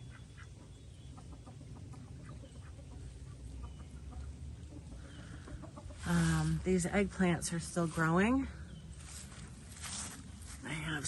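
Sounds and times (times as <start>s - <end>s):
ducks quacking in a vegetable garden: 0.0s - 6.8s
speech: 6.1s - 8.6s.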